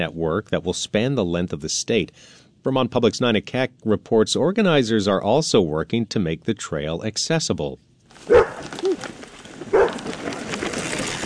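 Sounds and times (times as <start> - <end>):
speech: 0.0 - 8.8
soft outdoor noise: 0.0 - 11.2
service dog barking in Essex Junction Vermont: 8.3 - 8.6, 9.7 - 10.0.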